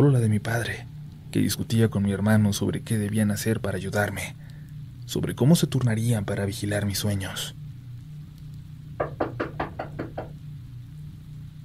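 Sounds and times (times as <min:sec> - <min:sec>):
speech: 0:00.0 - 0:04.4, 0:05.1 - 0:07.6
low steady hum: 0:00.0 - 0:11.6
firm knocking on a door: 0:09.0 - 0:10.4.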